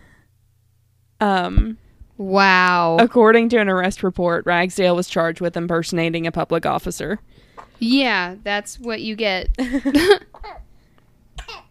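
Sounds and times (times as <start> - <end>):
speech: 1.2 - 10.6
baby coughing: 10.3 - 10.7, 11.4 - 11.6.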